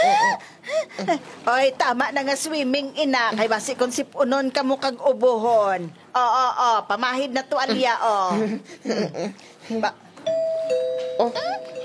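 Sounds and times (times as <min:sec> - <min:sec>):
speech: 0:00.4 - 0:10.5, 0:11.2 - 0:11.7
two-tone ding-dong doorbell chime: 0:10.2 - 0:11.8.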